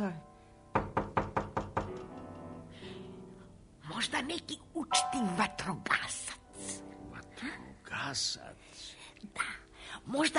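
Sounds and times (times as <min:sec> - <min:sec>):
firm knocking on a door: 0:00.7 - 0:02.5
speech: 0:04.0 - 0:06.4, 0:07.4 - 0:10.3.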